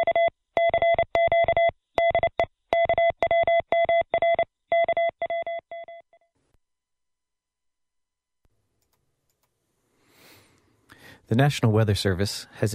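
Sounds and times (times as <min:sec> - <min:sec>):
Morse code electronic tone sent from a radio station: 0:00.0 - 0:06.2
speech: 0:11.3 - 0:12.7.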